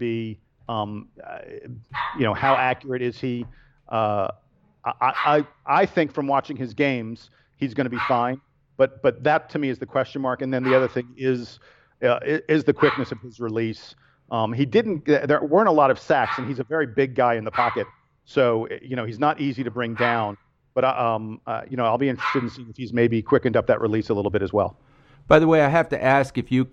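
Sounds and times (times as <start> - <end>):
speech: 0.0 - 26.7
dog yapping in the background: 1.9 - 2.8, 5.1 - 5.5, 8.0 - 8.3, 10.6 - 11.0, 12.8 - 13.2, 16.2 - 16.6, 17.5 - 17.9, 19.9 - 20.3, 22.2 - 22.6.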